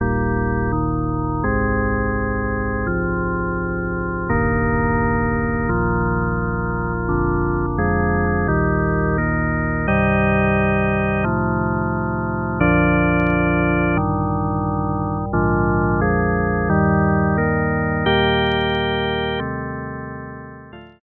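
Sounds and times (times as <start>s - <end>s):
soft organ: 0.0s - 21.0s.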